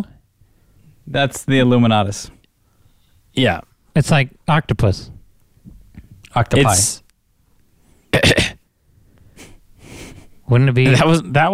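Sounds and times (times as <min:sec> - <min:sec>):
speech: 0:01.1 - 0:02.4, 0:03.4 - 0:05.2, 0:06.3 - 0:07.0, 0:10.5 - 0:11.5
sick person coughing: 0:08.1 - 0:08.6.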